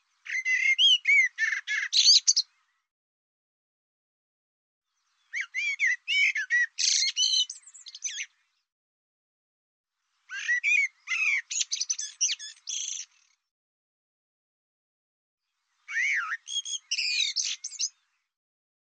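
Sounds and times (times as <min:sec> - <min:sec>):
bird singing fast jumbled phrases of sharp chirps and rising whistles: 0:00.3 - 0:02.5, 0:05.1 - 0:08.4, 0:10.3 - 0:13.2, 0:15.9 - 0:18.0.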